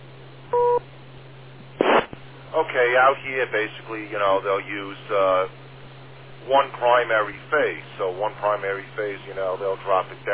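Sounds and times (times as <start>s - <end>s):
steady low hum: 0.0s - 10.3s
two-tone electronic beep on an amateur radio contact: 0.5s - 0.8s
speech: 2.6s - 5.6s, 6.4s - 10.3s.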